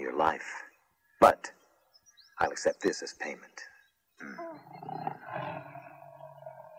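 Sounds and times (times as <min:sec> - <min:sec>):
speech: 0:00.2 - 0:00.6, 0:01.2 - 0:01.6, 0:02.4 - 0:04.9
tiger growling: 0:04.2 - 0:06.7.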